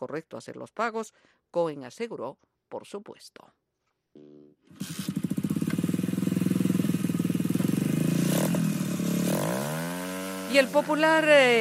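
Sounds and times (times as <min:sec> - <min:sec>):
speech: 0:00.0 - 0:03.6, 0:10.5 - 0:11.6
many loud motorcycles in a caravan rumbling past and revving: 0:04.7 - 0:11.6.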